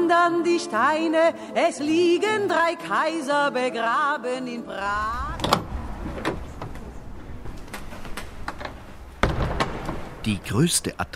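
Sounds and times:
speech: 0:00.1 - 0:05.6, 0:10.2 - 0:11.1
low rumbling background: 0:04.7 - 0:10.6
heavy door opening: 0:04.8 - 0:10.4
loud thud: 0:04.9 - 0:10.3
sharp clunks and knocks: 0:05.4 - 0:10.2.

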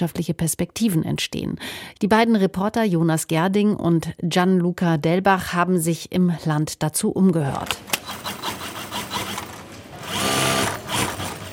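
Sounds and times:
speech: 0:00.0 - 0:08.4
about 50 sewing machines stitching cotton fabric into bath towels at a textile company: 0:07.8 - 0:11.5.

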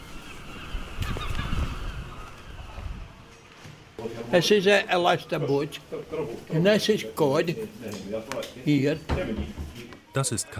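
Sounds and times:
gulls calling at a fishing harbour: 0:00.0 - 0:03.3
speech: 0:04.3 - 0:10.5.

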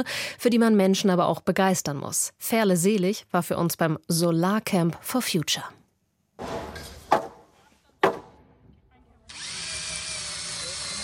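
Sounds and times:
speech: 0:00.0 - 0:05.8
sharp knocks against wood: 0:06.4 - 0:07.4, 0:08.0 - 0:08.4
power drill driving screws into wooden beams to build a roof at a solar camp: 0:09.3 - 0:11.0.

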